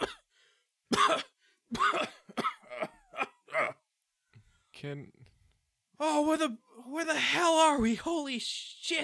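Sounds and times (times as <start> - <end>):
man acting out a coughing fit: 0.0 - 0.3, 0.9 - 3.9
speech: 4.8 - 5.3, 6.0 - 9.0.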